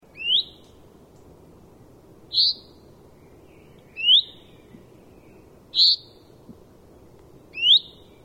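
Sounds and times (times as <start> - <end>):
quiet low background hiss: 0.0 - 8.2
common chaffinch Fringilla coelebs calling: 0.1 - 0.8, 2.3 - 6.4, 7.5 - 8.2.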